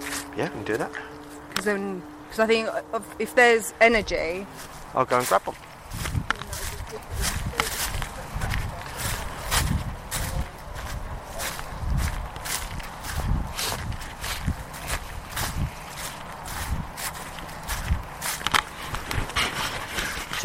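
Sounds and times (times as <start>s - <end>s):
speech: 0.4s - 6.0s
heavy footsteps thudding across a room: 5.8s - 19.4s.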